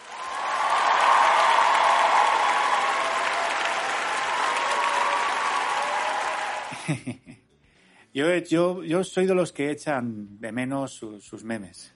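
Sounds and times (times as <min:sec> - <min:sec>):
sizable crowd applauding: 0:00.0 - 0:07.0
laughter: 0:06.6 - 0:07.4
speech: 0:06.9 - 0:07.4, 0:08.2 - 0:11.9.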